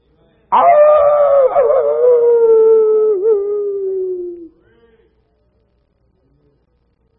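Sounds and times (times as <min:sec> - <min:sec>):
wolf howling: 0:00.5 - 0:04.5.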